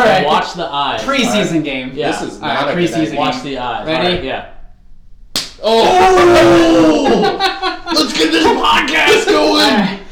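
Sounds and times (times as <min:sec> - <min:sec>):
speech: 0:00.2 - 0:04.6, 0:05.6 - 0:10.0
open-hand slap on a person: 0:05.3 - 0:05.7
person crying out: 0:05.6 - 0:07.4
laughter: 0:05.8 - 0:09.8.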